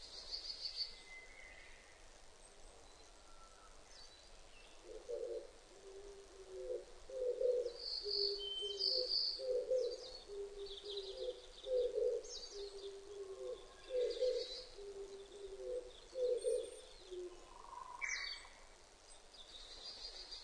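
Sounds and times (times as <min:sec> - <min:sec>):
Oriental turtle dove cooing: 0:04.8 - 0:18.2.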